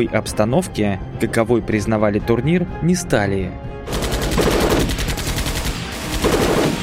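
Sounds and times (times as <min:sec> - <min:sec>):
speech: 0:00.0 - 0:04.5
automatic gunfire from several barrels echoing inside a lift cabin: 0:03.9 - 0:06.8.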